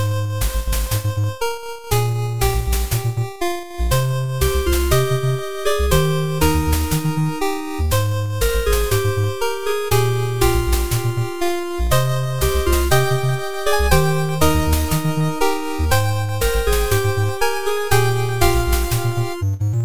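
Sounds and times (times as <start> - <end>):
menu theme music: 0.1 - 19.8.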